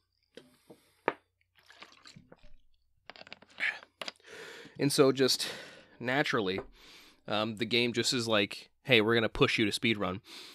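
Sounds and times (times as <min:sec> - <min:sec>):
quiet slurping of someone sipping water: 0:01.6 - 0:02.6
speech: 0:04.8 - 0:10.5.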